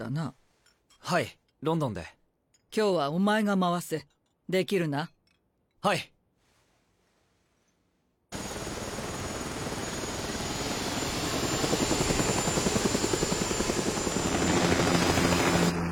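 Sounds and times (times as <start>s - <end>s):
speech: 0.0s - 0.4s, 1.0s - 5.2s, 5.8s - 6.2s
helicopter rotor noise in flight: 8.3s - 15.9s.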